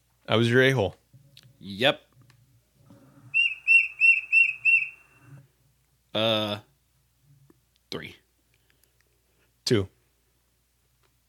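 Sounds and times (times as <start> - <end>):
faint low noise: 0.0 - 11.2
speech: 0.3 - 1.0, 1.6 - 2.1, 6.1 - 6.7, 7.9 - 8.2, 9.7 - 10.0
Tufted titmouse giving clear whistled notes: 3.3 - 5.3.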